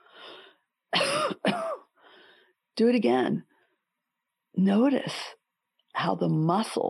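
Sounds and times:
loud throaty coughs: 0:01.0 - 0:01.9
speech: 0:02.8 - 0:03.5, 0:04.6 - 0:05.4, 0:06.0 - 0:06.8.

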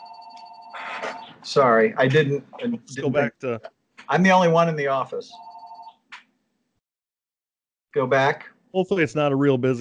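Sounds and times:
short electronic phone ring: 0:00.0 - 0:01.3, 0:05.3 - 0:06.0
speech: 0:01.0 - 0:05.5, 0:07.9 - 0:09.7.

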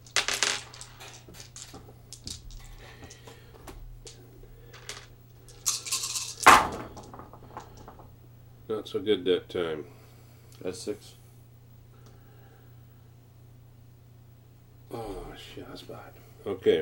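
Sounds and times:
dice rolled for a tabletop war game: 0:00.0 - 0:08.1
speech: 0:08.8 - 0:10.0, 0:10.6 - 0:11.2, 0:15.8 - 0:16.7.

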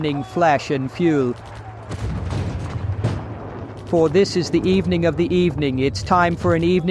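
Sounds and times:
speech: 0:00.0 - 0:02.1, 0:03.9 - 0:06.8
artillery shells bursting: 0:01.4 - 0:06.0
continuous low rumble: 0:02.0 - 0:06.8.

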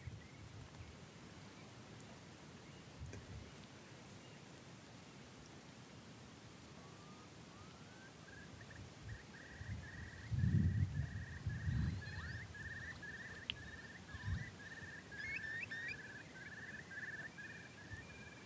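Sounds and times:
Eurasian curlew calling on in-by land of an upland farm in the Yorkshire Dales: 0:07.0 - 0:18.4.

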